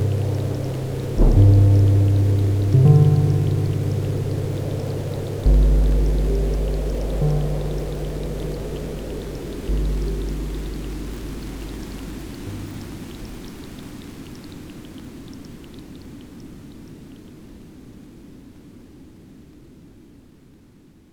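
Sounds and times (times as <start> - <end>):
deep low chords ringing out: 0.0 - 13.6
soft rain-like hiss: 0.0 - 13.8.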